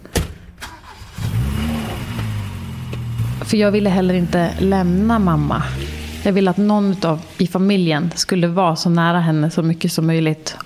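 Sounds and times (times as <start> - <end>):
car engine starting and revving as the car pulls away: 0.6 - 8.3
speech: 3.5 - 10.6.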